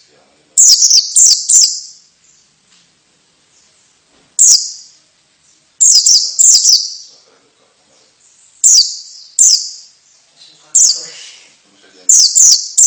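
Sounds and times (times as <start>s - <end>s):
female white-eye chirping: 0.0s - 2.6s, 3.4s - 12.8s.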